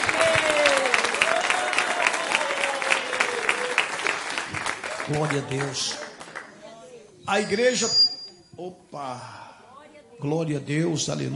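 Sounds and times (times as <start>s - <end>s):
people cheering: 0.0s - 5.5s
congregation clapping: 0.0s - 6.6s
speech: 5.1s - 6.0s, 7.3s - 8.0s, 8.6s - 9.4s, 10.2s - 11.3s.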